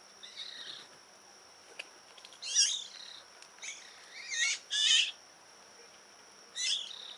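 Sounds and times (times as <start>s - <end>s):
Eurasian magpie calls, Pica pica: 2.4s - 5.2s, 6.6s - 7.1s.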